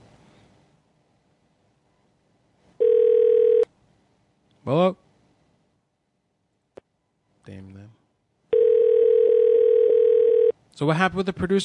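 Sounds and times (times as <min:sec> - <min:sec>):
ringback tone from an outgoing phone call: 0:02.8 - 0:03.7, 0:08.5 - 0:10.5
speech: 0:04.7 - 0:05.0, 0:10.8 - 0:11.6.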